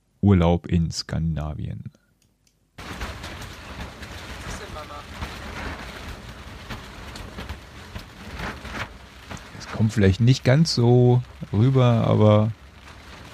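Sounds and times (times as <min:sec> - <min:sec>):
speech: 0:00.2 - 0:02.0, 0:09.8 - 0:12.6
steady rain pattering on a taut tent tarp: 0:02.8 - 0:13.3
wind gusts buffeting a tent: 0:02.8 - 0:13.3.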